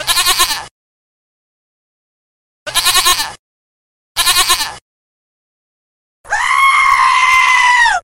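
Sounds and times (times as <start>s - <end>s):
goat bleating: 0.0s - 0.7s, 2.7s - 3.4s, 4.2s - 4.8s, 6.3s - 8.0s.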